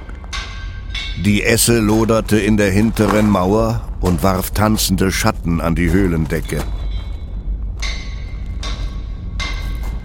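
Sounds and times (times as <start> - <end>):
low rumbling background: 0.0 - 10.0
hammer striking an anvil: 0.2 - 4.2, 7.8 - 10.0
speech: 1.2 - 6.8.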